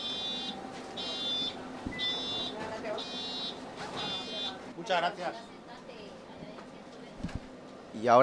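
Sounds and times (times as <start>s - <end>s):
bus wheelchair ramp warning buzzer: 0.0s - 4.6s
speech: 4.9s - 5.6s, 8.0s - 8.2s.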